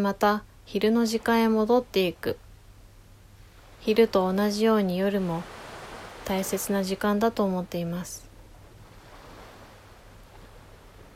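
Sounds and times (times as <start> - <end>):
speech: 0.0 - 2.4, 3.8 - 5.6, 6.2 - 8.2
ocean surf washing onto a shore: 0.0 - 11.1.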